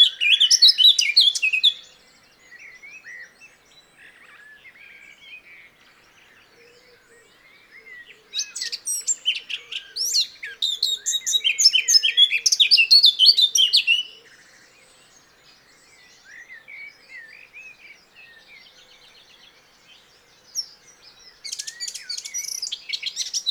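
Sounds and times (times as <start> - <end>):
Eurasian blackcap Sylvia atricapilla singing: 0.0 - 23.4.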